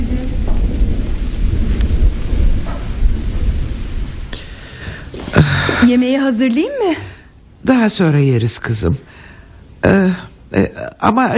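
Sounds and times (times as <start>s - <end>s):
thunder rumbling: 0.0s - 7.9s
heavy rain pouring: 0.0s - 11.3s
speech: 5.9s - 9.2s, 9.8s - 11.3s.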